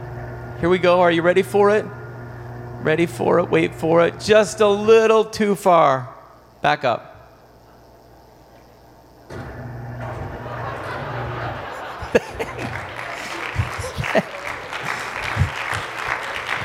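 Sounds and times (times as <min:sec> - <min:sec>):
speech: 0:00.6 - 0:02.0, 0:02.8 - 0:07.1
laughter: 0:10.0 - 0:16.6
audience clapping: 0:11.6 - 0:16.6.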